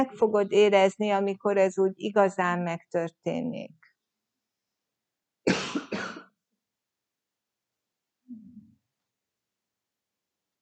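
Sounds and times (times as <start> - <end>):
speech: 0.0 - 3.9
low throat-clearing rumble: 5.5 - 6.3
person coughing sharply: 5.5 - 6.3.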